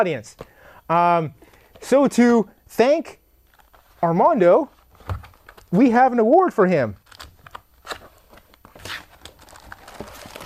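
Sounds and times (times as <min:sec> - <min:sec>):
speech: 0:00.0 - 0:03.2, 0:04.0 - 0:07.0
paper wrapping crinkling as an award is unwrapped: 0:03.4 - 0:06.0, 0:07.0 - 0:10.4
paper wrapping tearing: 0:08.7 - 0:10.4.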